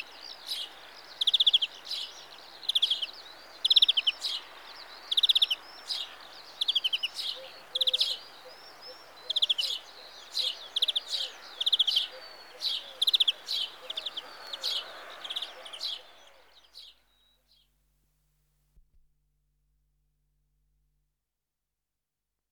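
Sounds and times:
European greenfinch trilling and twittering, Carduelis chloris: 0.0s - 16.1s.

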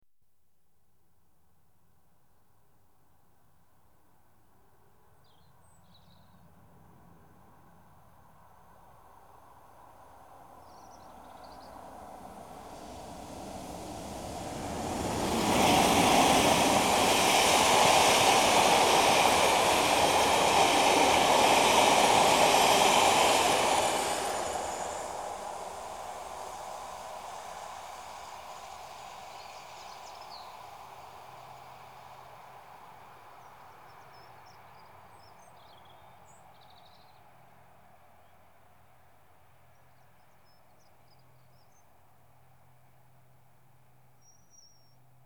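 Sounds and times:
diesel express trains passing: 9.8s - 33.9s.

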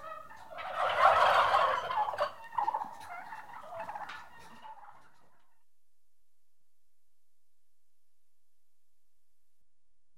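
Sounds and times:
six-month-old turkeys gobbling: 0.0s - 5.6s.

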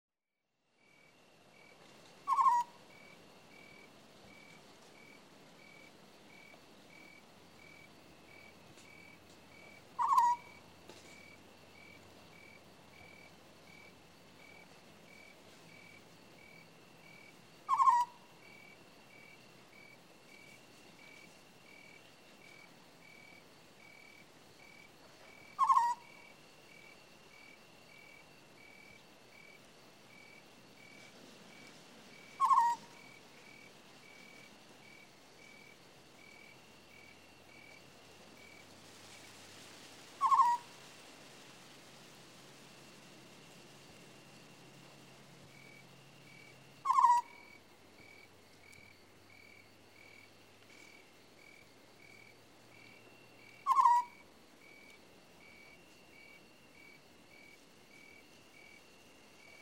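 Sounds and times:
African scops owl calling: 2.2s - 3.7s, 9.6s - 10.7s, 17.6s - 18.4s, 25.2s - 27.0s, 32.2s - 34.4s, 40.1s - 40.8s, 45.6s - 48.2s, 52.9s - 56.4s.

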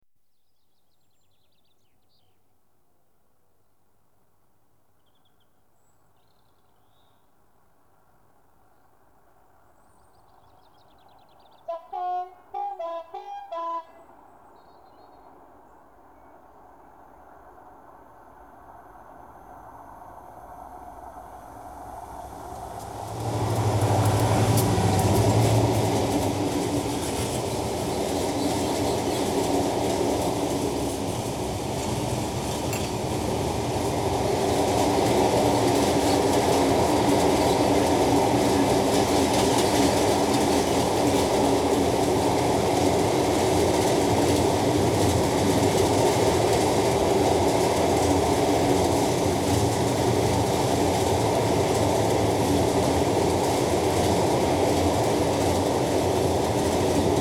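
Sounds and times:
heavy diesel trains passing: 10.2s - 57.1s.

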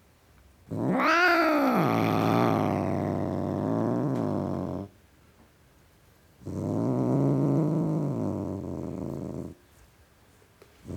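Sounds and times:
tom cat growling: 0.7s - 4.9s, 6.4s - 9.6s.

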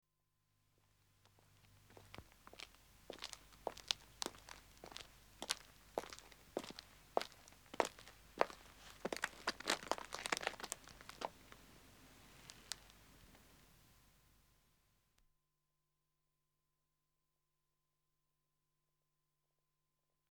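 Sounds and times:
two men's footsteps walking on a country road: 1.3s - 13.1s.

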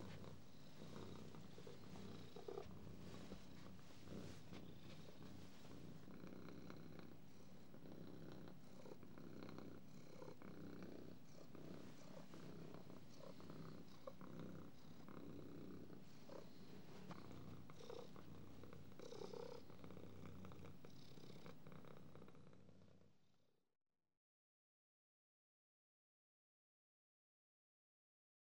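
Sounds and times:
cat purring: 0.0s - 23.3s.

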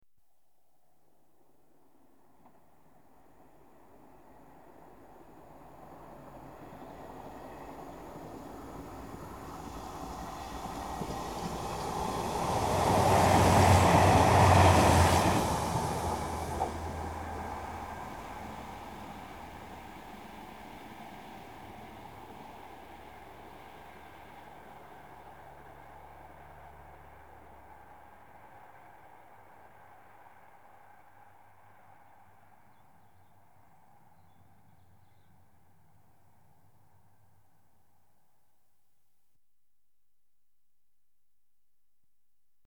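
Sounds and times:
diesel commuter trains passing: 3.7s - 32.7s.

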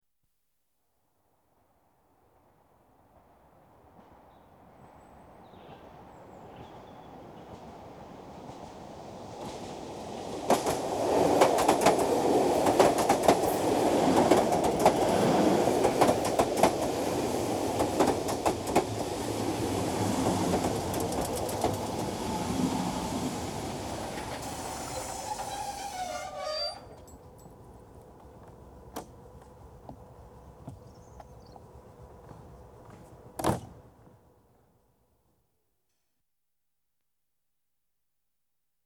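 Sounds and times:
electric train arriving: 6.6s - 30.5s.

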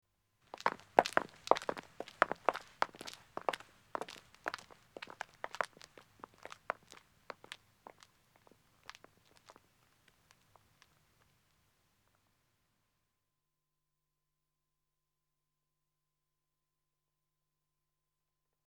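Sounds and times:
man walking on a country road: 0.5s - 10.7s.

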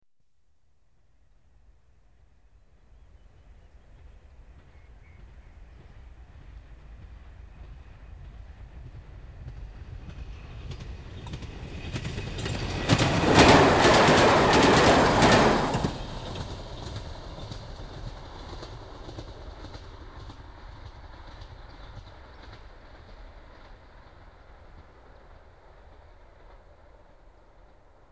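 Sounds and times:
diesel railcar passing: 6.6s - 28.0s.

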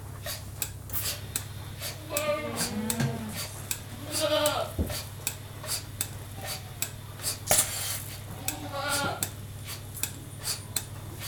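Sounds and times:
low constant hum: 0.0s - 11.2s
milking machine hissing pulses: 0.0s - 11.2s
domestic goat bleating while being milked by machine: 2.0s - 3.4s, 4.0s - 4.8s, 8.4s - 9.2s.

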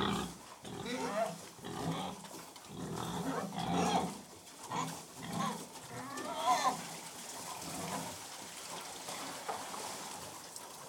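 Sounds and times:
pigs grunting and snuffling while feeding: 0.0s - 8.3s.

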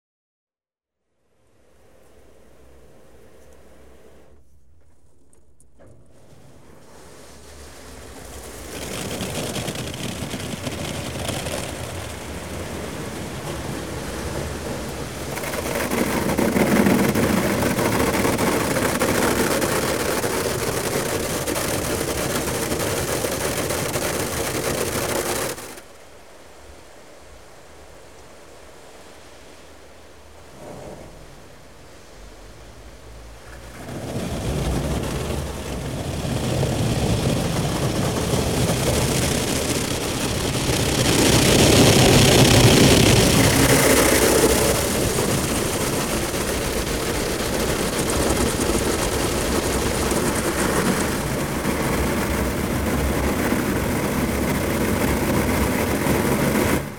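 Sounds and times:
car wash water spraying, heard from inside car: 6.1s - 25.9s, 33.1s - 56.9s.

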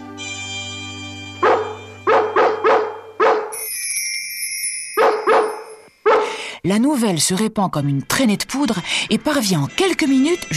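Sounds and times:
dogs barking in alarm: 1.4s - 3.6s, 5.0s - 6.4s
speech: 6.6s - 10.5s.

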